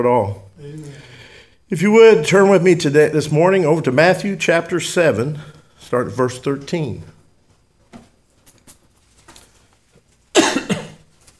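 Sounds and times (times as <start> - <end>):
speech: 0.0 - 1.0, 1.7 - 7.1
soft rustles: 7.4 - 10.3, 11.0 - 11.3
person coughing: 10.3 - 11.0.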